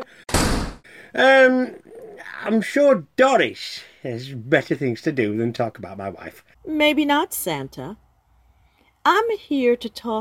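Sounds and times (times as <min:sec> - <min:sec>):
door swinging shut with a loud thud: 0:00.3 - 0:00.8
speech: 0:01.2 - 0:01.8, 0:02.4 - 0:08.0, 0:09.0 - 0:10.1.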